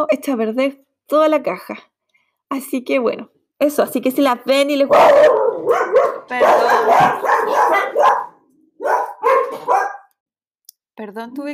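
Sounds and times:
speech: 0.0s - 1.9s, 2.5s - 9.8s, 11.0s - 11.5s
neighbours' dogs barking on a night walk: 4.9s - 10.2s.

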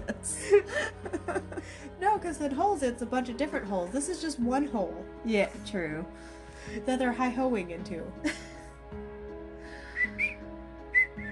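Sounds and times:
laughter: 0.0s - 1.9s
speech: 1.3s - 8.5s
person whistling a tune: 9.9s - 11.3s.

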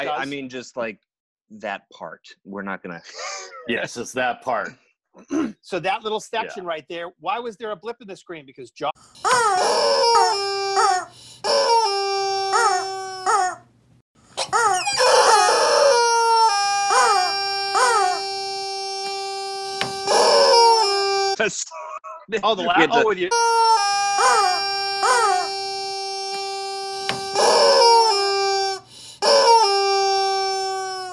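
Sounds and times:
speech: 0.0s - 10.9s, 21.5s - 23.6s
rubber chicken toy squawking: 9.2s - 13.7s, 14.4s - 21.4s, 23.3s - 31.1s.

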